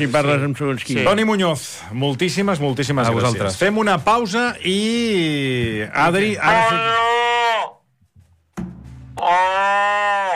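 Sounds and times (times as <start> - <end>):
speech: 0.0 - 7.1
man imitating cow mooing: 6.5 - 7.8, 9.2 - 10.3
soft thump: 8.2 - 9.2.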